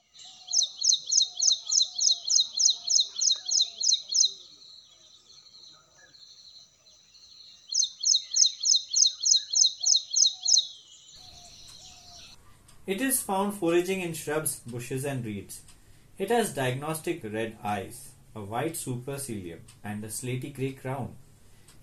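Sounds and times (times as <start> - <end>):
ashy prinia calling with rapid high chirps: 0.0 - 12.4
speech: 12.9 - 21.2.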